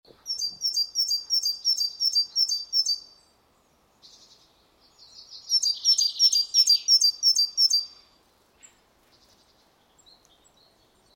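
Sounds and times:
great tit Parus major calling: 0.2 - 3.1, 5.0 - 8.0.

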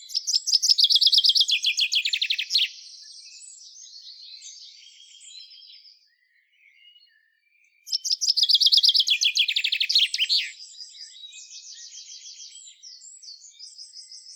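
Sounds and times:
common chaffinch Fringilla coelebs singing: 0.0 - 2.8, 7.9 - 13.5.

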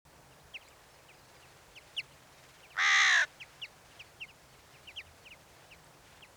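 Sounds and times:
small birds chirping: 0.2 - 6.3
Carrion crow cawing: 2.8 - 3.3.

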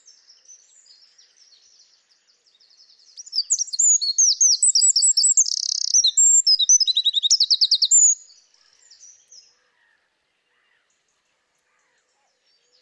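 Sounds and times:
Eurasian wren Troglodytes troglodytes song: 0.0 - 9.7.

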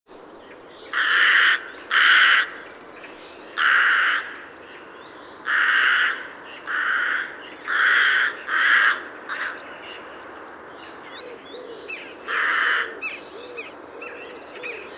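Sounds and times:
Carrion crow Corvus corone cawing: 0.9 - 2.6, 3.6 - 4.4, 5.4 - 10.1, 12.3 - 13.2.

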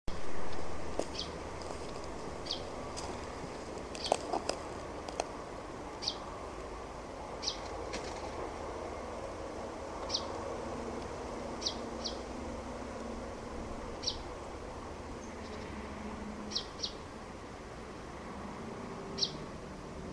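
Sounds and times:
steady background hum: 0.1 - 20.1
common chaffinch giving short sharp high calls: 6.0 - 6.2, 11.6 - 12.2, 14.0 - 14.2, 16.5 - 17.0.

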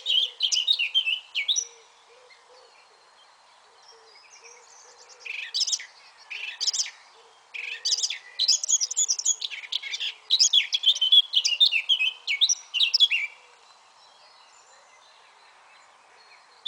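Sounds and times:
Eurasian blackcap Sylvia atricapilla singing a fast varied warble: 0.0 - 1.7, 4.3 - 7.0, 7.6 - 13.4.

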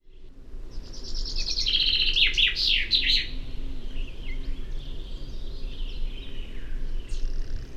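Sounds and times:
common chaffinch Fringilla coelebs singing: 0.7 - 7.7.

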